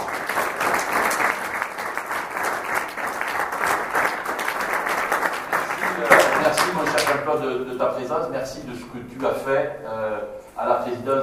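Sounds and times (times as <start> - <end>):
audience applause at a chamber of commerce and industry meeting: 0.0 - 7.3
speech: 7.3 - 11.2.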